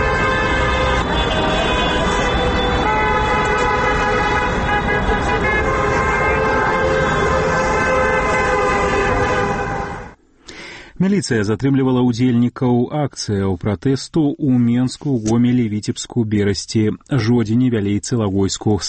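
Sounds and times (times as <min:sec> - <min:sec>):
car horns honking in greeting during a peaceful protest: 0:00.0 - 0:10.2
speech: 0:11.0 - 0:18.8.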